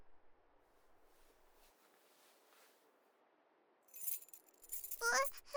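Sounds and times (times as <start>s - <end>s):
spare house key jingling as handed over: 3.9s - 5.4s.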